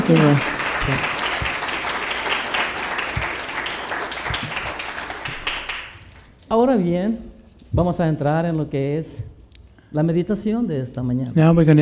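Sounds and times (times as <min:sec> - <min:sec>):
audience applause at a morning meditation gathering: 0:00.0 - 0:06.4
speech: 0:00.1 - 0:01.2, 0:06.5 - 0:09.2, 0:09.9 - 0:11.8.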